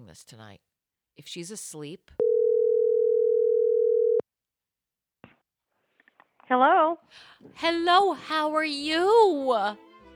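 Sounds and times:
speech: 0.1 - 2.2, 6.5 - 9.9
ringback tone from an outgoing phone call: 2.2 - 4.2.

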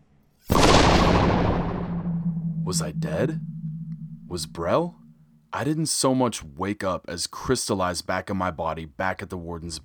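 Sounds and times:
explosion of energy destroying a room: 0.5 - 5.4
speech: 2.7 - 3.6, 4.3 - 9.8.

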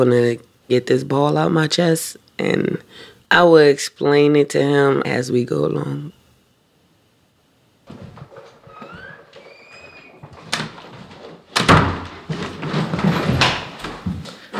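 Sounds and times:
speech: 0.0 - 6.2
apartment door creaking and squeaking as it swings: 7.9 - 14.0.

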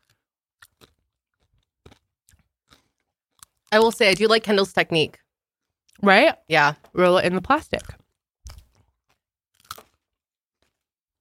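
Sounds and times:
crunchy chewing of crisp food: 0.0 - 3.8, 7.8 - 11.2
speech: 3.7 - 5.2, 6.0 - 8.0.

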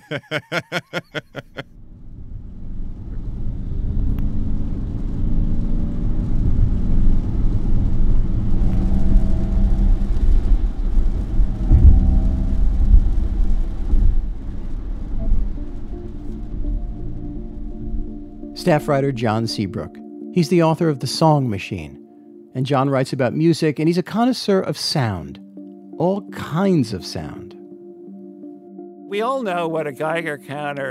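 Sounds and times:
laughter: 0.0 - 1.6
speech: 0.1 - 1.4, 18.7 - 22.0, 22.6 - 25.4, 26.0 - 27.4, 29.1 - 30.8
steady low rumble and whir of road noise: 1.7 - 18.5
electric Ford Mustang Mach-E driving through Williamsburg: 1.8 - 18.4.

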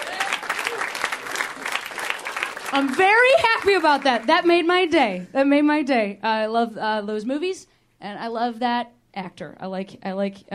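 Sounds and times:
audience clapping: 0.0 - 4.6
speech: 2.7 - 10.5.

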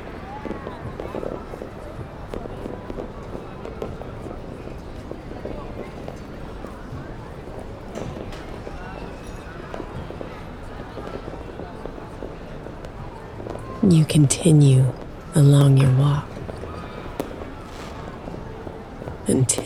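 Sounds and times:
crowd murmuring: 13.8 - 19.6
speech: 13.9 - 16.3, 19.3 - 19.6
fireworks popping and crackling: 17.2 - 19.2.

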